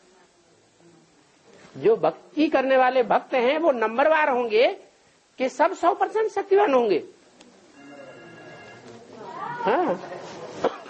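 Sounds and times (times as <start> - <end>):
low murmur of noise: 0.0 - 2.4, 7.1 - 10.8
speech: 1.8 - 4.8, 5.4 - 7.2, 9.6 - 10.1
mobile phone ringing with an electronic ringtone: 7.7 - 9.0.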